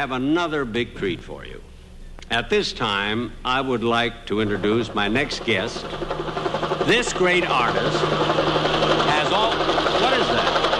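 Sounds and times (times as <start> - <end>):
speech: 0.0 - 1.7, 2.3 - 8.4
approaching helicopter with rapid rhythmic chopping and whirring engine: 4.1 - 10.7.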